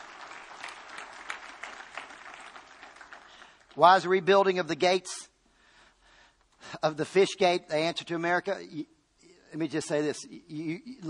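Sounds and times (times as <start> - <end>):
congregation applauding during a sermon: 0.0 - 4.3
speech: 3.8 - 5.3, 6.7 - 8.9, 9.5 - 11.0.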